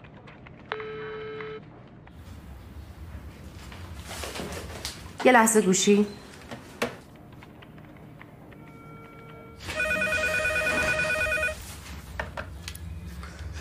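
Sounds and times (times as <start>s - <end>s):
speech: 5.2s - 6.2s
telephone ringing: 8.6s - 11.6s.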